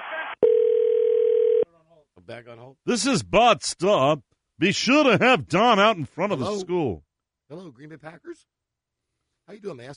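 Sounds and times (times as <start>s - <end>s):
loud telephone ringing tone over a phone line: 0.4s - 1.6s
speech: 2.3s - 8.5s, 9.5s - 9.9s.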